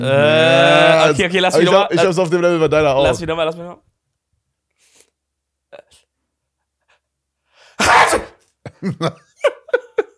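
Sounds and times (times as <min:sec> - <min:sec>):
speech: 0:00.0 - 0:03.9, 0:08.8 - 0:09.6
person fake sneezing: 0:07.8 - 0:08.4
laughter: 0:08.7 - 0:10.1.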